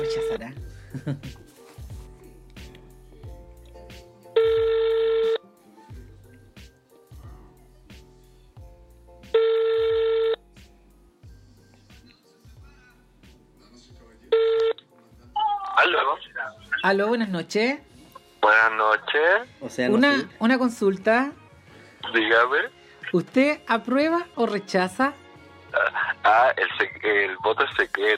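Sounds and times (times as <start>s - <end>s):
low rhythmic background: 0.0s - 28.1s
speech: 0.1s - 1.5s, 16.9s - 21.4s, 22.0s - 28.1s
outgoing telephone call ringback tone: 4.4s - 5.4s, 9.4s - 10.4s, 14.4s - 14.8s.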